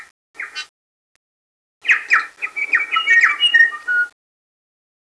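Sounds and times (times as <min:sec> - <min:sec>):
bellbird calling: 0:02.0 - 0:04.1.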